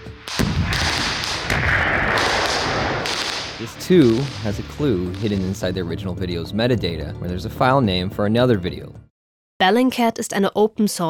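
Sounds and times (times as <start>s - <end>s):
loud explosions: 0.0s - 6.2s
speech: 3.6s - 11.0s.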